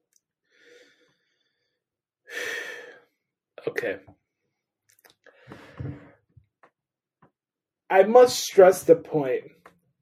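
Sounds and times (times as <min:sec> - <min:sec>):
deep breath: 0:00.4 - 0:03.2, 0:05.3 - 0:06.2
speech: 0:03.6 - 0:04.2, 0:07.9 - 0:09.6.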